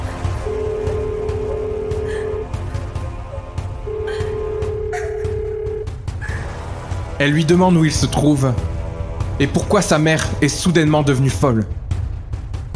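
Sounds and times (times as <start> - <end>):
low rumbling hum: 0.0 - 9.4
ringback tones on a woman's mobile phone call with weak network signal: 0.4 - 2.6, 3.9 - 5.9
speech: 7.2 - 8.7, 9.4 - 11.8.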